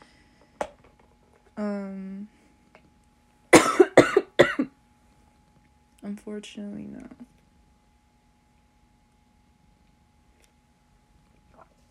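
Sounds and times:
person in a coughing fit after smoking: 0:03.5 - 0:04.7
speech: 0:06.2 - 0:07.3.

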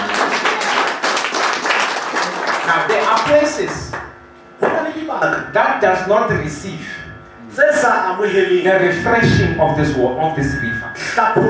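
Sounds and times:
congregation clapping hands during a Sunday church service in Lesotho: 0:00.0 - 0:04.2
speech: 0:02.7 - 0:03.9, 0:05.1 - 0:11.4.

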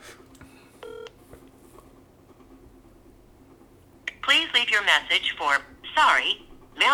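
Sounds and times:
low steady hum: 0:00.0 - 0:06.9
telephone keypad tone dialing a phone number: 0:00.8 - 0:01.1
speech: 0:04.6 - 0:06.9.

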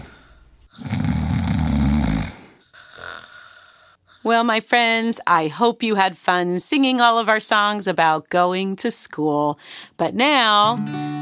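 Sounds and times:
softer raspy breath: 0:00.0 - 0:01.2, 0:02.2 - 0:04.4, 0:09.6 - 0:10.0
deep rumbling dinosaur snore sound effect: 0:00.7 - 0:04.2
speech: 0:04.2 - 0:11.1.

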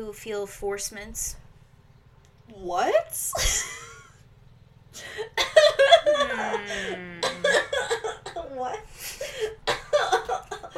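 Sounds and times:
speech: 0:00.0 - 0:01.4, 0:02.5 - 0:03.8
person coughing and laughing at the same time: 0:05.4 - 0:08.6, 0:09.2 - 0:10.7.

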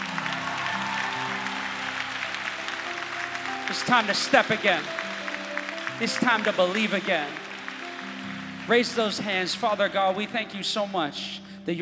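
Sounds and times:
audience clapping: 0:00.0 - 0:11.3
sustained low keyboard or organ chords: 0:02.1 - 0:11.4
speech: 0:03.7 - 0:05.0, 0:06.0 - 0:07.4, 0:08.7 - 0:11.8.

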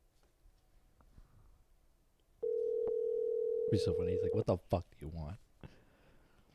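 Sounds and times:
outgoing phone call ringing tone over Bluetooth: 0:02.4 - 0:04.4
speech: 0:03.7 - 0:05.8.

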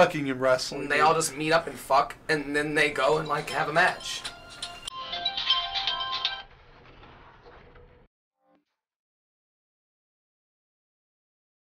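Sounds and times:
speech: 0:00.0 - 0:04.4
phone ringing with an incoming call, warbling electronic tone: 0:03.0 - 0:06.6.

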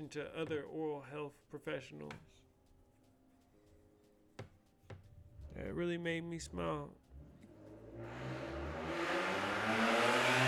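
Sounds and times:
speech: 0:00.0 - 0:02.5, 0:05.5 - 0:07.0, 0:08.0 - 0:08.6
car engine revving: 0:07.1 - 0:10.4.

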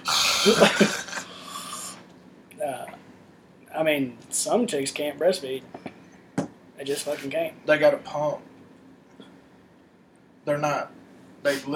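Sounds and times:
person yawning: 0:00.0 - 0:02.0
speech: 0:00.4 - 0:01.1, 0:03.8 - 0:05.8, 0:06.8 - 0:08.5, 0:10.4 - 0:11.7.

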